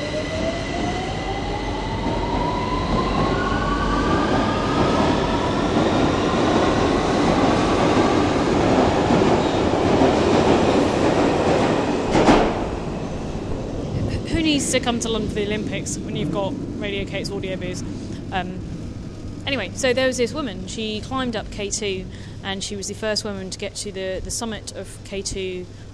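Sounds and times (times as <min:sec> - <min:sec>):
rumble of train wheels: 0:00.0 - 0:25.9
speech: 0:14.7 - 0:18.7, 0:19.4 - 0:25.9.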